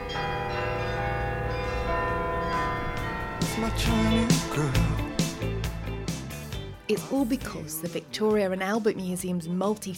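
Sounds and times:
church tower bells of the Martini Tower in Groningen Netherlands chiming a pop tune: 0.0s - 6.6s
speech: 3.6s - 5.0s, 6.9s - 9.9s.

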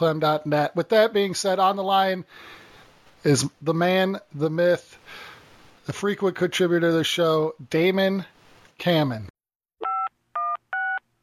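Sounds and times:
speech: 0.0s - 2.6s, 3.2s - 9.3s
touch-tone telephone dialing beeps: 9.8s - 11.0s.

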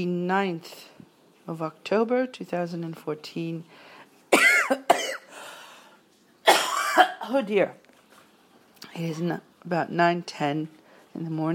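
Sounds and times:
speech: 0.0s - 0.9s, 1.5s - 3.9s, 7.0s - 7.8s, 9.0s - 11.5s
person coughing: 4.4s - 5.4s, 6.5s - 7.4s.

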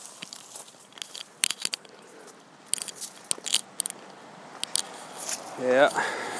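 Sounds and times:
footsteps crunching through a deep pile of dry autumn leaves: 0.0s - 1.4s, 2.9s - 3.4s, 4.9s - 6.3s
speech: 5.6s - 6.3s.

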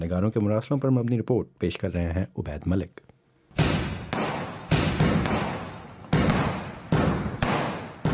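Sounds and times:
speech: 0.0s - 3.1s
Diwali firecrackers and fireworks exploding: 3.6s - 8.1s.

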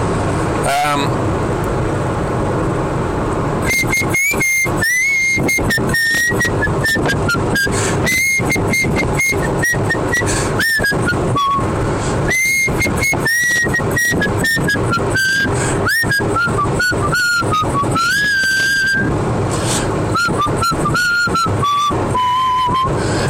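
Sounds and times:
low rumble of a car interior while driving: 0.0s - 23.2s
person whistling a wandering tune in a car: 3.6s - 11.7s, 12.3s - 19.1s, 20.1s - 23.2s.

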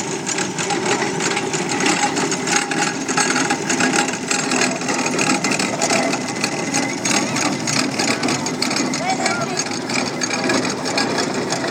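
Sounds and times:
steam traction engine chuffing and clattering: 0.0s - 11.6s
faint murmur: 6.2s - 11.6s.

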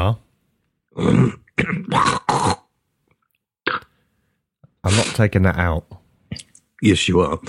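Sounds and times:
speech: 1.0s - 1.8s, 5.2s - 7.4s
person with a cold clearing phlegm from their throat: 1.0s - 2.7s.

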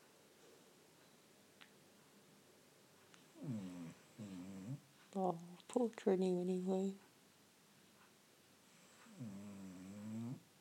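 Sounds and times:
faint drawn-out snore: 3.4s - 4.8s, 8.7s - 10.5s
speech: 5.2s - 7.0s.

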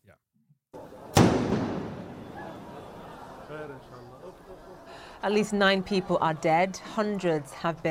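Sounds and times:
crowd murmuring: 0.8s - 7.8s
explosive bang: 1.1s - 2.9s
laughter: 1.9s - 7.8s
speech: 3.5s - 7.8s.

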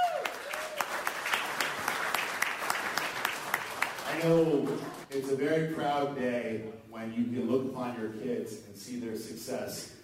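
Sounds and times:
guests at a family celebration applauding: 0.0s - 5.4s
speech: 4.2s - 10.0s.

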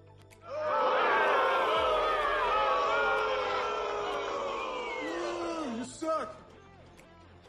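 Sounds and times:
rowdy crowd shouting and jeering: 0.4s - 6.2s.

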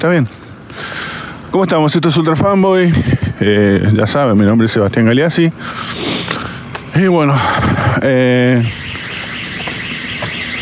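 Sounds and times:
speech: 0.0s - 6.2s, 7.0s - 8.8s
alarm going off with a steady harmonic-rich electronic tone: 8.4s - 10.5s.

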